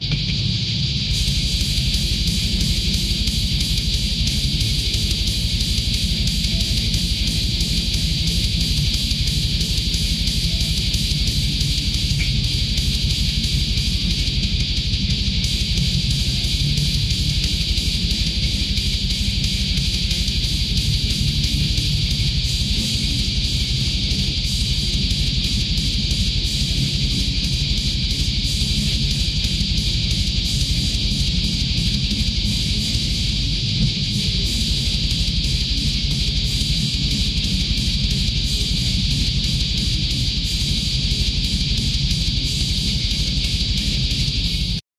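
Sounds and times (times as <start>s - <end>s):
aggressive heavy metal thrash music: 0.0s - 44.8s
aggressive shredding guitar: 0.0s - 44.8s.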